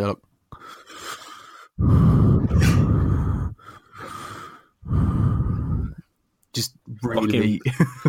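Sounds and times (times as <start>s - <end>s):
speech: 0.0s - 0.3s, 7.0s - 8.0s
voice imitating heavy mouth breathing: 0.6s - 6.1s.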